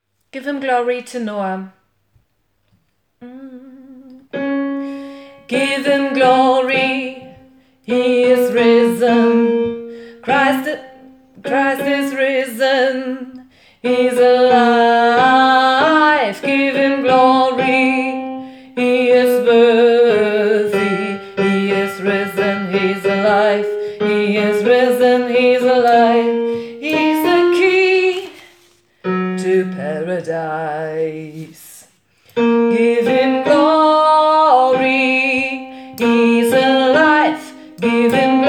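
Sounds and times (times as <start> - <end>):
tenor singing: 3.2 - 31.8, 32.4 - 38.4
gospel choir singing: 5.5 - 28.7, 32.5 - 38.4.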